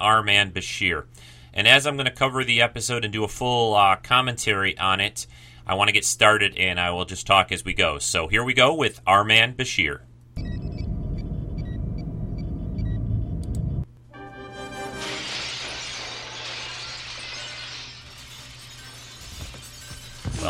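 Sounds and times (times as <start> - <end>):
speech: 0.0 - 10.5
low steady rumble: 10.4 - 13.9
glass window shattering with fragments tinkling: 14.6 - 20.4.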